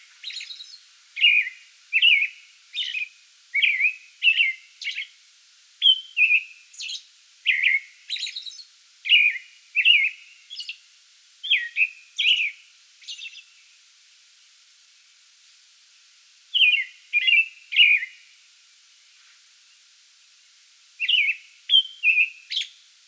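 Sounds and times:
American robin singing: 0.0 - 5.2, 5.8 - 10.8, 11.4 - 13.6, 16.5 - 18.3, 21.0 - 23.0.

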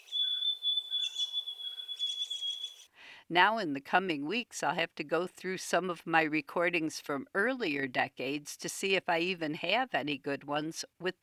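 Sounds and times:
backyard songbird singing: 0.0 - 2.9
speech: 3.3 - 11.2.

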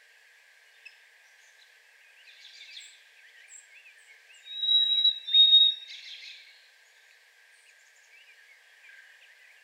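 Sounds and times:
Harris's sparrow whistled song in a yard: 4.5 - 5.8.

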